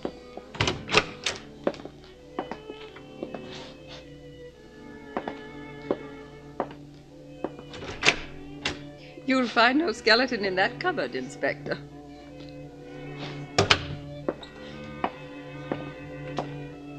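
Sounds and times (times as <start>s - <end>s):
door to a married couple's room opened and shut: 0.1s - 3.7s, 7.4s - 9.0s, 12.9s - 16.7s
speech: 9.3s - 11.9s.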